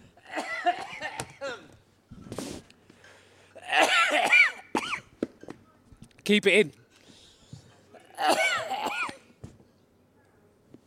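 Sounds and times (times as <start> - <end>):
man coughing from something caught at the back of the throat: 0.2 - 1.7, 3.6 - 5.0, 8.0 - 9.2
speech: 6.3 - 6.8.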